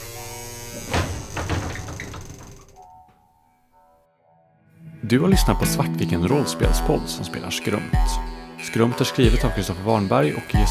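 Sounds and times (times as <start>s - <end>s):
door slowly swinging open outward: 0.3s - 3.2s
speech: 5.1s - 10.6s.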